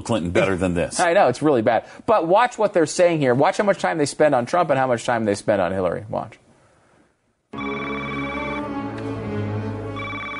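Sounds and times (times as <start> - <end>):
speech: 0.0 - 6.4
telephone ringing: 7.6 - 8.9, 9.9 - 10.3.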